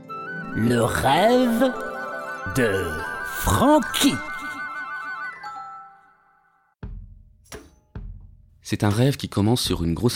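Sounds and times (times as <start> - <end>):
short radio jingle musical sting: 0.3 - 6.0
speech: 0.6 - 4.3, 8.7 - 10.1
heavy booming thumps: 6.8 - 7.3.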